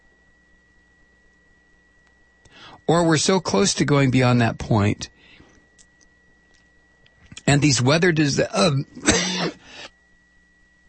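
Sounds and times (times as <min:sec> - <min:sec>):
speech: 0:02.9 - 0:05.1, 0:07.5 - 0:09.6
throat clearing: 0:09.0 - 0:09.7
person with a persistent cough coughing harshly: 0:09.0 - 0:09.8.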